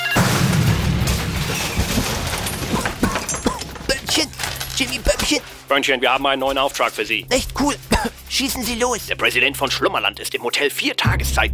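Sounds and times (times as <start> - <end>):
explosive charge detonating: 0.2 - 4.2
speech: 5.7 - 11.5.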